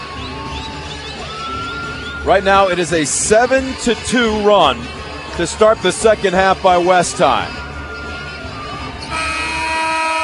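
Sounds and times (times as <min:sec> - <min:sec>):
crowd murmuring in a gym: 0:00.0 - 0:10.2
speech: 0:02.2 - 0:07.6
loud basketball arena buzzer: 0:09.1 - 0:10.2.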